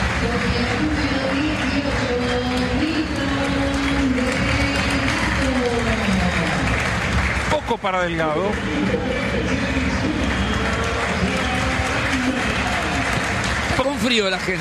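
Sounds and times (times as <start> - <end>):
large stadium crowd clapping and cheering: 0.0 - 14.6
speech: 7.8 - 10.2, 14.0 - 14.6.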